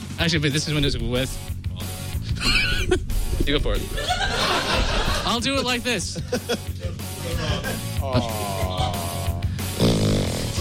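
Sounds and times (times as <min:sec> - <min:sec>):
speech: 0:00.2 - 0:01.6, 0:02.9 - 0:08.5
laughter: 0:02.2 - 0:09.7
person making a throaty snoring noise with their voice: 0:08.0 - 0:10.6
loud nasal snort: 0:09.6 - 0:10.6.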